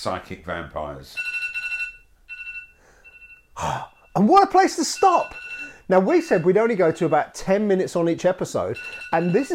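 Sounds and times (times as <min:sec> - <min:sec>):
speech: 0:00.0 - 0:01.3, 0:03.6 - 0:09.5
electronic timer alarm set for about 10 minutes beeping: 0:01.2 - 0:07.8, 0:08.6 - 0:09.5.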